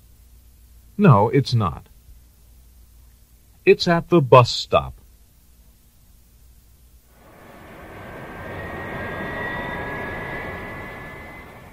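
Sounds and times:
speech: 0:01.0 - 0:01.9, 0:03.6 - 0:05.0
Boeing airplane flying past: 0:07.1 - 0:11.7.

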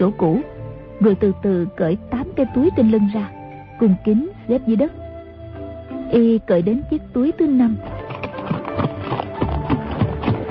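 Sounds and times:
speech: 0:00.0 - 0:05.0, 0:06.1 - 0:08.0
galloping horse hooves of a rider hurrying in: 0:07.6 - 0:10.4.

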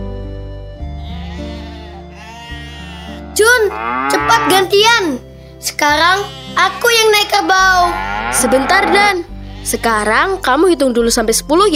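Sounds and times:
goats bleating while being herded in a pasture: 0:01.0 - 0:04.7, 0:05.8 - 0:10.4
speech: 0:03.7 - 0:11.7.

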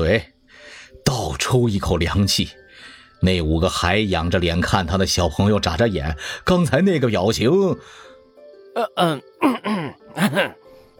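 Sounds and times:
speech: 0:00.0 - 0:00.3, 0:01.2 - 0:08.1, 0:08.8 - 0:10.6
person coughing with rough throat-clearing coughs: 0:08.8 - 0:10.6.

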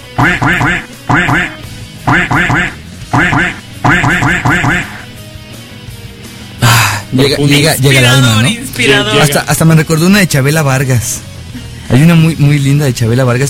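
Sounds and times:
duck quacking sound effect: 0:00.1 - 0:05.1
speech: 0:00.2 - 0:04.9, 0:07.1 - 0:11.3, 0:11.9 - 0:13.4.

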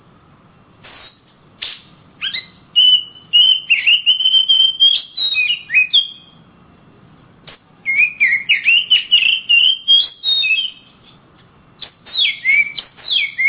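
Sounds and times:
Oriental magpie-robin singing warbling whistles: 0:01.0 - 0:06.4, 0:07.8 - 0:11.0, 0:11.8 - 0:13.4.

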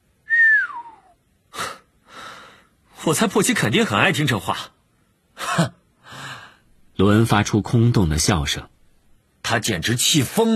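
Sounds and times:
person whistling softly, one note gliding downward: 0:00.3 - 0:01.2
breathy exhalations: 0:01.5 - 0:02.7, 0:06.0 - 0:06.7
speech: 0:03.0 - 0:04.8, 0:07.0 - 0:08.8, 0:09.5 - 0:10.5.

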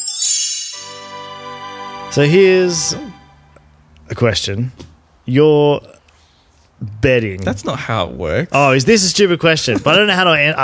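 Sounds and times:
page-turn chime from a read-along record: 0:00.0 - 0:03.5
speech: 0:02.1 - 0:03.2, 0:04.1 - 0:06.0, 0:06.8 - 0:10.6.

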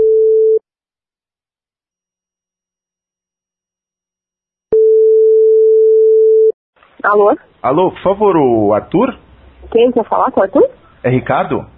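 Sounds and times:
loud steady mid-pitched telephone line tone: 0:04.8 - 0:06.5
speech: 0:07.0 - 0:11.7.

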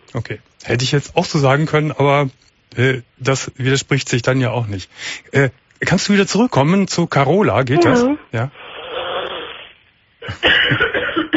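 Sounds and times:
speech: 0:00.1 - 0:08.6, 0:10.3 - 0:11.0
person coughing over a telephone line: 0:10.2 - 0:11.3.

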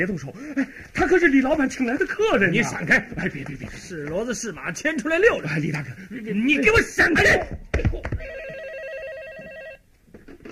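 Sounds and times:
speech: 0:00.0 - 0:08.1
telephone ringing with a warbling electronic trill: 0:08.2 - 0:09.9.

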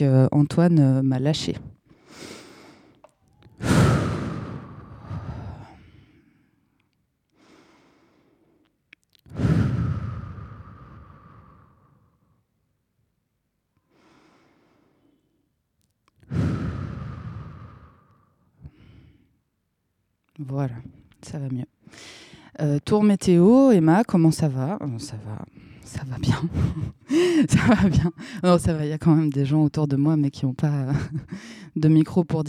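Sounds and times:
speech: 0:00.0 - 0:02.4, 0:20.4 - 0:32.4
deep breaths taken as a breathing exercise: 0:01.8 - 0:12.5, 0:13.8 - 0:15.5, 0:16.2 - 0:19.4, 0:21.8 - 0:22.6, 0:25.5 - 0:25.9, 0:26.8 - 0:27.5, 0:28.1 - 0:28.5, 0:31.2 - 0:31.8.

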